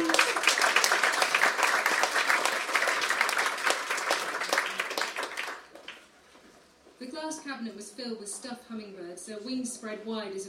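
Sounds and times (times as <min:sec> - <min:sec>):
audience applauding: 0:00.0 - 0:06.0
speech: 0:07.4 - 0:10.4.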